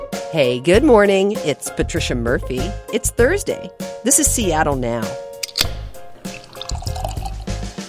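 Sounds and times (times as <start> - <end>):
speech: 0.3 - 5.2
Lunar New Year beer pouring into a glass: 5.9 - 7.7.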